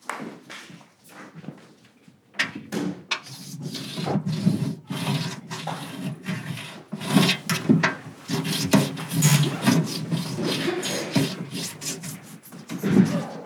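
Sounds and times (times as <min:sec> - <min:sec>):
pencil rubbed hard under wooden desk: 0:03.3 - 0:13.4.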